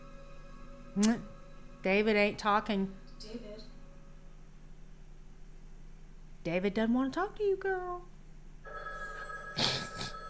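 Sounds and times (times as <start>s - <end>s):
faint steady hum: 0.0s - 10.2s
speech: 1.0s - 3.5s, 6.4s - 8.1s
big red old push-button telephone ringing with electromechanical bell: 8.6s - 10.2s.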